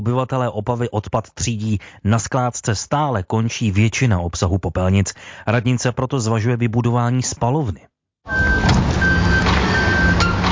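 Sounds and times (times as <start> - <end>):
speech: 0.0 - 9.2
garbage truck engine rumbling on a street in Opava: 8.3 - 10.5.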